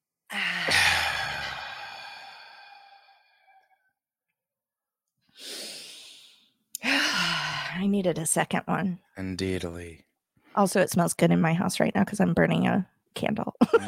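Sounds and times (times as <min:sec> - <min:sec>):
deep breathing in and out: 0:00.3 - 0:03.8, 0:05.3 - 0:07.9
speech: 0:07.8 - 0:13.8.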